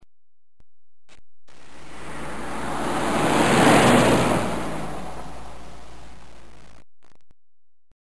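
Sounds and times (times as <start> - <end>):
car: 1.8 - 6.3.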